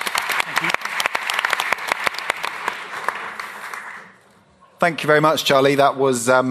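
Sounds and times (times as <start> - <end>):
small audience applauding: 0.0 - 4.2
speech: 4.8 - 6.4.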